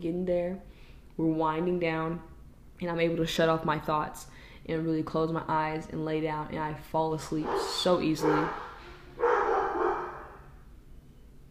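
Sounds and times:
speech: 0.0 - 9.3
dog barking: 7.4 - 10.5.

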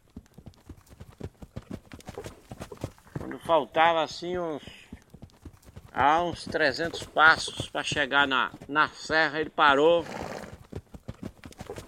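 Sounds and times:
horse stamping hooves: 0.0 - 11.8
speech: 3.3 - 4.8, 6.0 - 10.2
horse neighing: 10.0 - 10.6.

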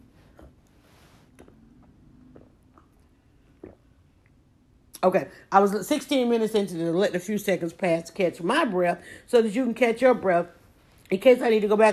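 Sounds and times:
person sipping a drink: 0.0 - 4.5
small gulps: 0.0 - 5.5
speech: 5.0 - 11.9.

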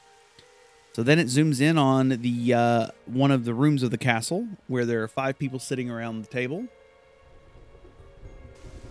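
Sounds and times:
steady rain: 0.0 - 3.8, 6.8 - 8.8
speech: 1.0 - 6.8
low rumbling thunder: 7.3 - 8.8.

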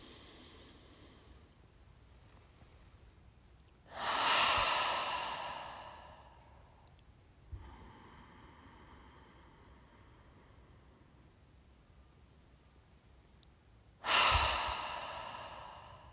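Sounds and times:
deep breath in and out through an open mouth in a breathing exercise: 0.0 - 1.6, 3.9 - 6.9, 7.5 - 11.6, 14.0 - 16.1
faint steady hum: 0.0 - 16.1.

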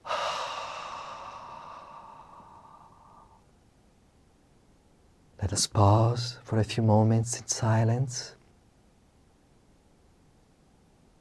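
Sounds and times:
deep breath exhaled during a guided breathing exercise: 0.0 - 3.5
speech: 5.4 - 8.4.

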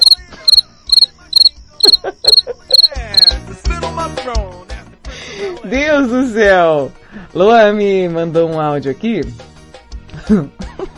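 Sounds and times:
cricket chirping: 0.0 - 3.4
laughter: 1.9 - 2.8
speech: 5.7 - 9.4, 10.3 - 10.6.

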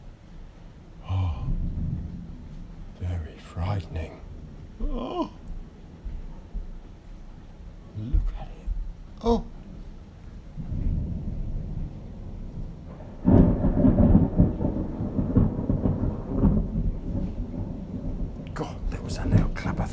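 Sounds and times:
constant roar of torrential rain: 0.0 - 19.9
heavy rolling thunder over Eastbourne: 1.0 - 9.0, 9.6 - 19.9
sharp thunder crack: 1.1 - 5.0, 10.6 - 19.9
speech: 3.6 - 5.4, 9.2 - 9.4.

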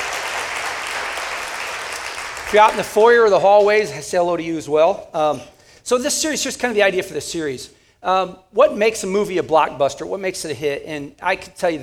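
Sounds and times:
audience applause: 0.0 - 3.8
speech: 2.5 - 11.8.

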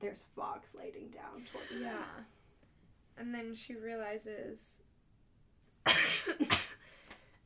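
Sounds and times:
speech: 0.0 - 2.4, 3.2 - 4.8, 5.8 - 6.7
person coughing: 5.8 - 6.9.

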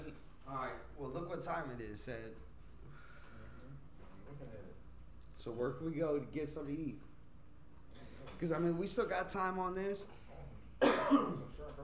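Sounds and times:
speech: 0.5 - 2.5, 4.3 - 4.8, 5.4 - 7.1, 8.4 - 10.2, 11.1 - 11.8
harsh coughing: 10.8 - 11.5.

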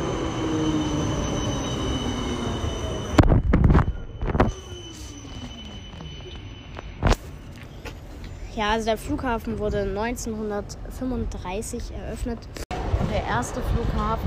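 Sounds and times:
tram wheels squealing: 0.0 - 9.2
tram rumbling past at the Erfurt airport tram connection in Germany: 0.0 - 14.2
speech: 8.6 - 12.6, 13.2 - 14.2.

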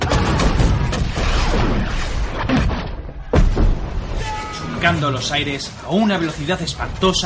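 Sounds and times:
cannon shots booming: 0.0 - 4.2
speech: 4.8 - 7.2.

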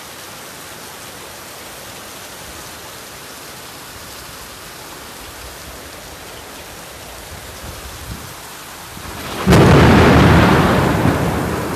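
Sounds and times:
hiss of rain during a rainstorm: 0.0 - 11.7
thunder during a rainstorm: 9.0 - 11.7.

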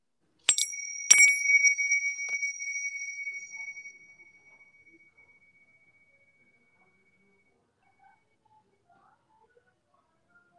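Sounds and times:
bright high metallic chime struck with taps: 0.5 - 7.6.

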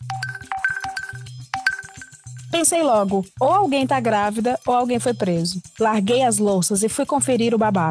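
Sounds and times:
electronic phone notification chimes from a group chat: 0.0 - 2.3
speech: 2.6 - 7.8.

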